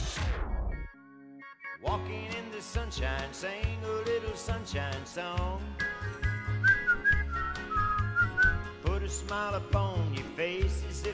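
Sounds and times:
speech: 1.8 - 6.3, 9.1 - 11.1
bouncy backing track with a thumping bass beat: 5.4 - 10.2
person whistling a bright wavering melody: 6.1 - 8.8.

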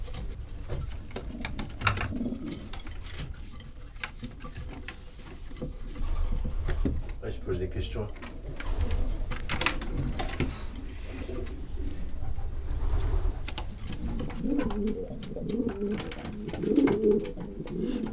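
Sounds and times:
faint pigeon wing flutters and rustles: 0.0 - 18.1
group of pigeons cooing in a loft: 0.0 - 18.1
speech: 7.4 - 8.3.

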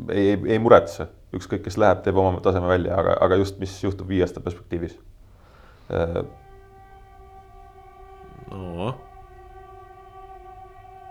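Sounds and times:
speech: 0.0 - 5.1, 5.9 - 6.4, 8.5 - 9.1
passing train horn: 5.5 - 11.0.

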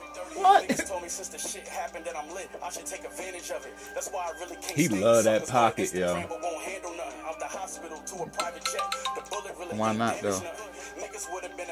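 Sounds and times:
speech: 0.4 - 11.7
phone ringtone for an incoming VoIP call: 8.4 - 10.5.

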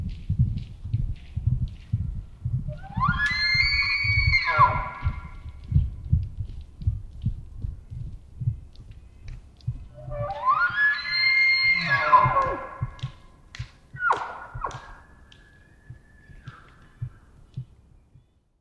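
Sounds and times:
elk herd hooves running on packed earth in Washington: 0.0 - 18.3
wild elk bugling in Washington: 2.7 - 5.4, 9.8 - 13.2, 13.9 - 17.2.

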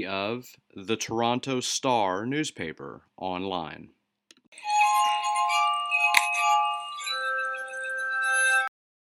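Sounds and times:
speech: 0.0 - 4.0
glass clink: 4.6 - 8.7
glass harmonica playing sustained ringing tones: 4.6 - 8.7.

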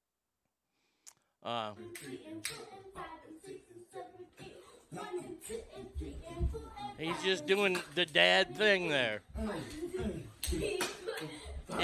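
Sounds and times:
speech: 1.4 - 11.8
rhythmic hand claps during cheer practice at home: 1.8 - 2.9, 5.4 - 11.8.

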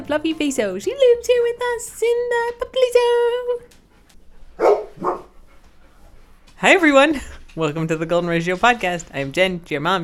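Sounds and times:
speech: 0.0 - 3.8, 6.6 - 10.0
dog barking in the kitchen: 4.6 - 5.4.

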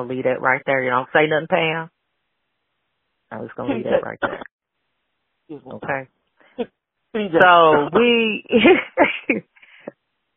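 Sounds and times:
speech: 0.0 - 2.0, 3.3 - 4.5, 5.5 - 9.5
woman coughing: 3.7 - 4.5, 7.4 - 8.1.

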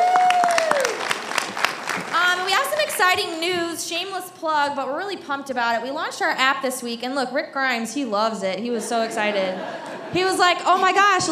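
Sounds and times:
voices cheering: 0.0 - 1.2
audience applause: 0.0 - 3.0
speech: 3.1 - 11.3
laughter: 8.8 - 10.9.

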